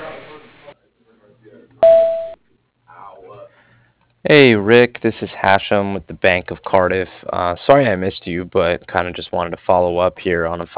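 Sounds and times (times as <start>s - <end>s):
electronic voicemail beep: 1.8s - 2.4s
speech: 4.3s - 10.7s.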